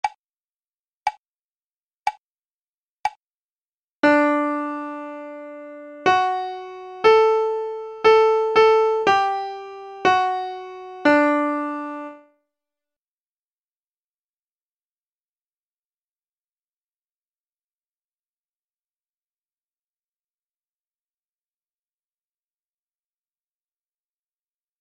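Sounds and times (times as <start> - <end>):
imitation of a melodica: 4.0 - 12.2.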